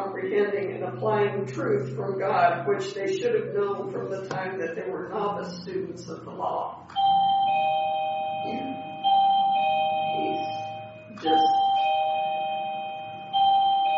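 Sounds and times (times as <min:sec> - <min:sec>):
speech: 0:00.4 - 0:07.2, 0:08.4 - 0:08.9, 0:11.2 - 0:11.7
bell chime ringing: 0:06.9 - 0:13.9.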